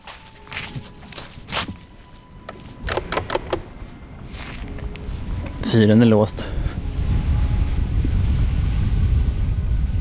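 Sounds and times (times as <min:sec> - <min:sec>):
footsteps crunching up a path toward a lighthouse: 0:00.0 - 0:02.9, 0:03.8 - 0:05.8
strong cold wind buffeting the microphone on a hilltop: 0:00.8 - 0:09.9
speech: 0:05.7 - 0:06.5.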